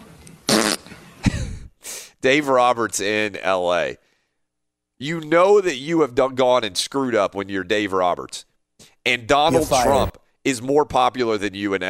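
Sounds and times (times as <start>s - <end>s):
armpit fart noises made with arm under armpit: 0.5s - 0.9s
speech: 2.2s - 4.0s, 5.0s - 11.8s.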